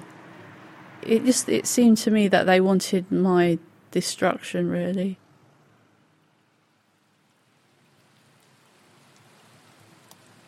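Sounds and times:
steady rain falling outside a clinic: 0:00.0 - 0:10.4
speech: 0:01.0 - 0:05.2
rain spattering on hard surfaces: 0:06.2 - 0:10.4.

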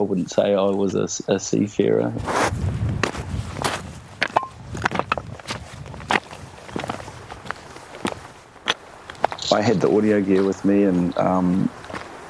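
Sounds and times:
speech: 0:00.0 - 0:02.8, 0:09.5 - 0:11.8
boots treading over rough schist and granite: 0:02.2 - 0:12.2
stone clacks: 0:04.2 - 0:05.2.

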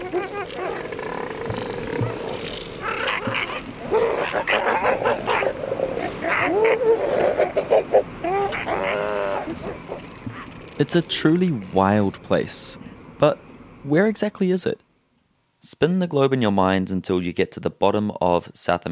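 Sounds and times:
elephant seals bellowing and roaring: 0:00.0 - 0:10.6
higher squawking calls: 0:00.0 - 0:10.6
speech: 0:10.8 - 0:14.8, 0:15.6 - 0:18.9.

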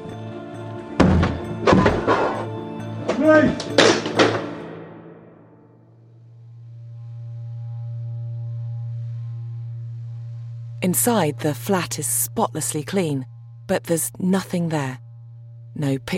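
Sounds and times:
door being smashed down with heavy splintering crashes: 0:01.0 - 0:02.4, 0:03.1 - 0:04.6
speech: 0:03.2 - 0:04.0, 0:10.8 - 0:15.0, 0:15.8 - 0:16.1
steady low hum: 0:05.5 - 0:16.1.

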